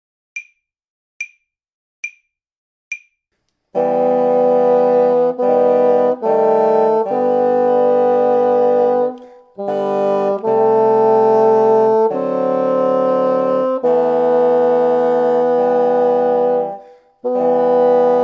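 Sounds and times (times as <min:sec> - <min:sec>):
three bassoons playing tutti: 0:03.8 - 0:18.2.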